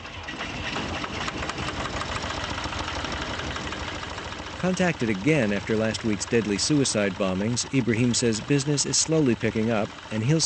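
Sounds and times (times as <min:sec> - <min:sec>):
generator engine running at a market in Baghdad: 0:00.0 - 0:10.4
speech: 0:04.6 - 0:10.4.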